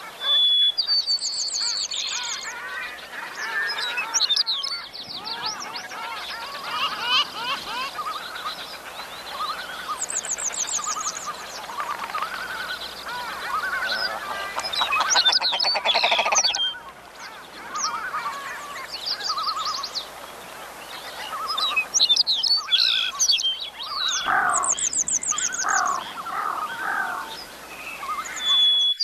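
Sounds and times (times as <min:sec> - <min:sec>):
Arctic birds singing and calling: 0:00.0 - 0:29.0
honking bird calls: 0:02.4 - 0:19.9, 0:22.7 - 0:27.4.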